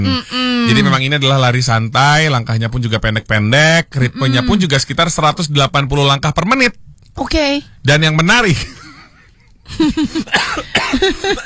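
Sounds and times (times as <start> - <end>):
speech: 0.0 - 8.8, 9.7 - 11.4
person coughing: 10.1 - 11.4.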